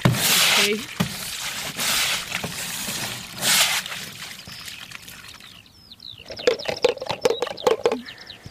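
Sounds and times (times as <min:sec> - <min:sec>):
water sluiced out of a dish-shaped pond in a takahē pen: 0:00.0 - 0:05.6
water splashing and trickling: 0:00.0 - 0:08.1
speech: 0:00.6 - 0:01.0.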